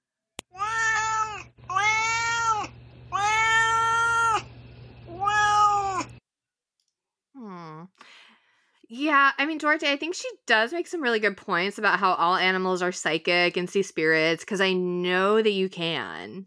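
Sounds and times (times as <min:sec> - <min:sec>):
cat meowing: 0:00.5 - 0:04.5, 0:05.1 - 0:06.2
speech: 0:09.0 - 0:16.4.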